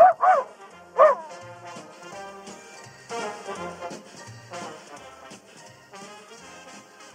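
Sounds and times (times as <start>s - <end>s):
small pet dog yipping and barking: 0.0s - 1.3s.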